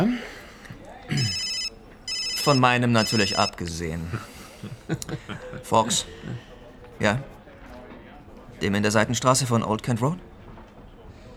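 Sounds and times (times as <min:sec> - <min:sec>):
laughter: 0:00.0 - 0:07.0
murmur of voice: 0:00.0 - 0:11.3
mobile phone ringtone electronic warble: 0:01.1 - 0:03.6
speech: 0:02.4 - 0:07.4, 0:08.6 - 0:10.3.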